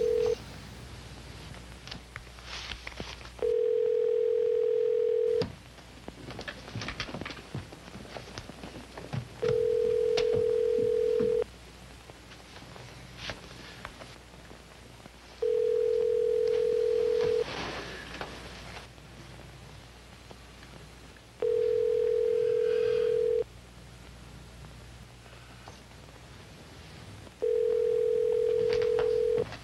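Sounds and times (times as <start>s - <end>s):
long steady telephone tones of a call from New York to the Kremlin in Moscow: 0.0s - 0.6s, 3.4s - 5.5s, 9.4s - 11.4s, 15.4s - 17.5s, 21.4s - 23.4s, 27.4s - 29.5s
faint rustling hiss on the telephone line: 0.0s - 29.6s.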